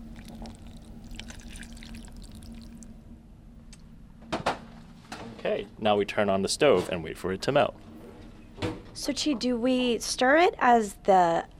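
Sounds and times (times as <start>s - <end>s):
water poured onto chocolate in a small saucepan for chocolate mousse: 0.0s - 2.9s
low hum: 0.0s - 11.5s
speech: 5.4s - 7.9s, 9.0s - 11.5s.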